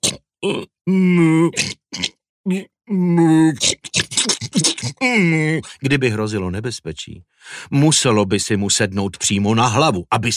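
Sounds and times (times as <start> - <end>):
voice imitating a dragon snoring loudly: 0.0 - 5.7
speech: 0.0 - 10.3.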